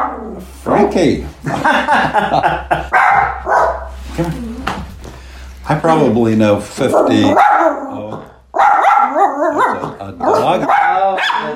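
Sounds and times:
speech: 0.4 - 2.8, 4.2 - 4.4, 5.8 - 7.5
laughter: 1.4 - 3.0, 9.6 - 10.8
dog barking and yipping excitedly at another dog through a window: 2.9 - 4.0, 6.8 - 11.5.

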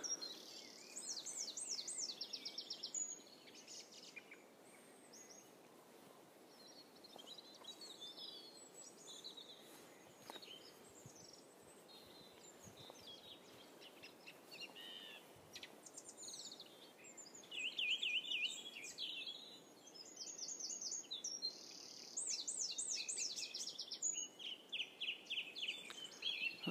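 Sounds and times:
wren singing rapid high-pitched trills: 0.0 - 5.5, 6.5 - 26.6
faint bird chirps: 0.0 - 26.6
soft outdoor hush: 0.0 - 26.6.

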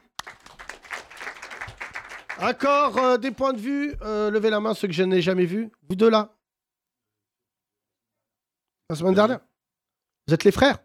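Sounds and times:
crowd of people clapping: 0.0 - 3.6
speech: 2.4 - 6.4, 8.9 - 9.5, 10.3 - 10.8.

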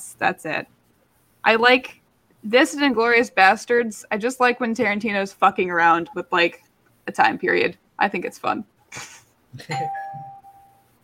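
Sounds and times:
speech: 0.2 - 0.8, 1.4 - 10.3
doorbell chiming: 9.7 - 10.9.

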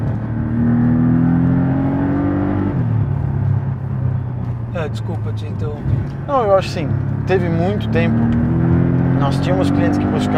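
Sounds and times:
car engine revving: 0.0 - 10.3
speech: 4.8 - 10.3.

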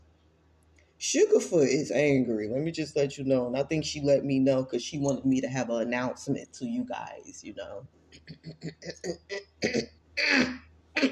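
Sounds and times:
speech: 1.0 - 11.1
person clearing throat with harsh rasps: 8.5 - 11.1.

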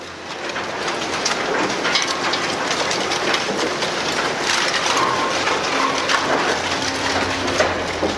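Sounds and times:
sharp crackles and clanks: 0.0 - 8.1
dense continuous grinding roar: 4.7 - 8.1.

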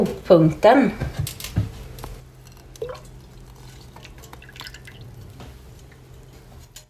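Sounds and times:
speech: 0.0 - 1.2
milk and cream poured into a saucepan: 2.7 - 6.0.

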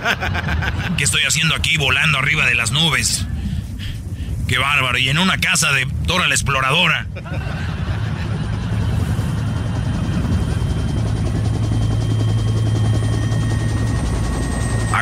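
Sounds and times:
laughter: 0.0 - 1.6, 7.0 - 11.1
helicopter rotor noise: 0.0 - 15.0
speech: 0.2 - 3.4, 4.5 - 7.7.

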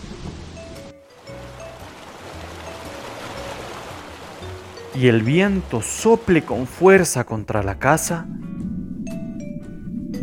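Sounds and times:
steady rushing water: 0.0 - 8.1
speech: 5.0 - 8.5.

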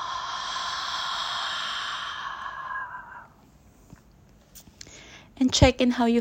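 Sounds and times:
deep slow breath during a guided breathing exercise: 0.0 - 3.6, 4.8 - 5.4
speech: 5.4 - 6.2.

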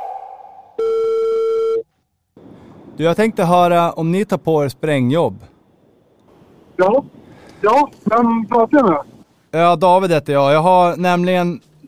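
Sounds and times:
ringback tone on an outgoing telephone call: 0.8 - 1.8
speech: 3.0 - 5.5, 6.8 - 11.7.

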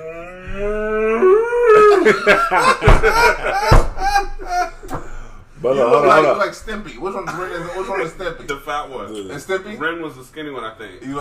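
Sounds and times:
person imitating a cow mooing: 0.0 - 2.1
laughter: 1.5 - 5.2, 7.0 - 8.5
speech: 2.0 - 4.7, 5.6 - 11.1.

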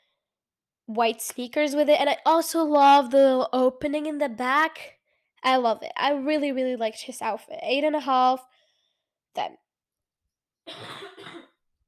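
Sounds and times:
speech: 0.9 - 8.6, 9.3 - 9.6, 10.7 - 11.5
harsh coughs: 10.7 - 11.6.

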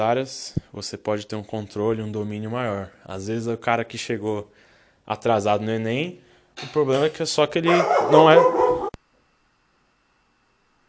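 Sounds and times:
speech: 0.0 - 8.7
dog barking: 7.7 - 9.0.

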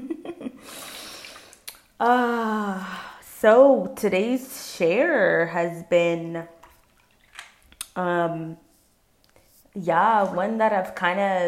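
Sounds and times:
speech: 2.0 - 6.6, 8.0 - 8.6, 9.8 - 11.4
water sloshing in bath as a person shifts: 6.4 - 7.9, 8.6 - 11.2.

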